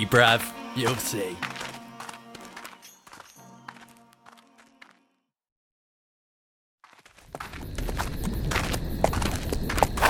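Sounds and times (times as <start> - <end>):
speech: 0.0 - 1.5
horse hooves clip-clopping: 0.8 - 5.0, 6.9 - 10.0.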